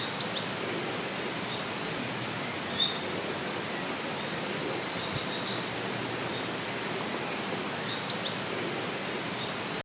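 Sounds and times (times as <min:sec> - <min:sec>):
faint background hiss: 0:00.0 - 0:09.8
yellowhammer singing at the edge of a town: 0:02.4 - 0:05.5.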